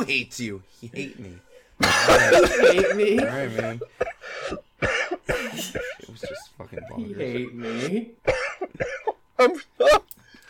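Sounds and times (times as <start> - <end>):
speech: 0.0 - 4.9, 5.6 - 10.0
person coughing after hard laughter: 1.8 - 10.1.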